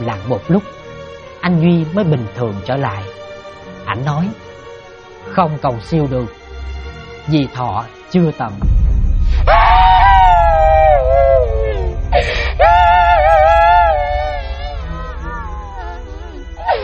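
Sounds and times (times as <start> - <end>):
speech: 0.0 - 0.8, 1.4 - 3.2, 3.9 - 4.4, 5.2 - 6.4, 7.2 - 8.7
woman wailing and crying bitterly: 9.5 - 16.8.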